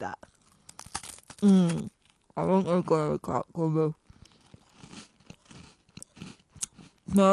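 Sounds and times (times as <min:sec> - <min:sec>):
speech: 0:00.0 - 0:00.3, 0:01.4 - 0:04.0, 0:07.1 - 0:07.3
crisp sugary cocoa cream biscuits crunched and chewed: 0:00.1 - 0:02.4, 0:04.0 - 0:07.3.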